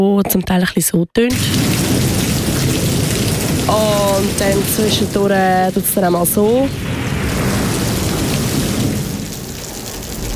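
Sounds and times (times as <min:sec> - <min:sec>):
speech: 0:00.0 - 0:01.7, 0:03.7 - 0:07.0
deep continuous rumble of thunder: 0:01.3 - 0:10.3
heavy rain pouring down: 0:01.3 - 0:10.3.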